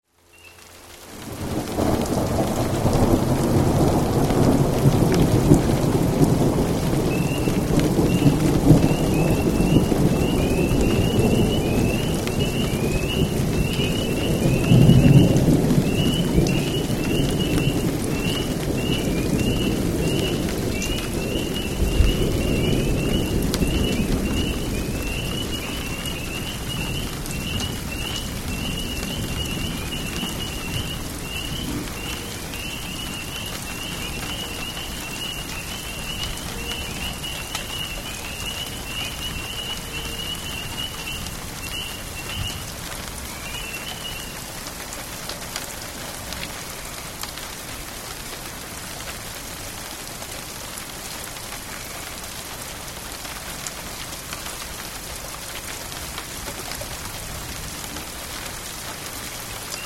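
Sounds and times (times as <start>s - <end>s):
rain at night in Florence KY: 0.0s - 59.8s
thunder at night in Florence KY: 1.2s - 33.3s
spring peepers calling at night in Florence KY: 7.0s - 44.5s.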